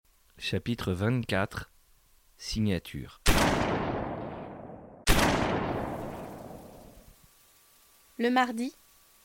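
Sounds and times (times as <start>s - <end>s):
speech: 0.4s - 1.7s, 2.4s - 3.6s, 8.2s - 8.8s
gunshot before dawn near the Fort des Boulets: 3.3s - 6.8s.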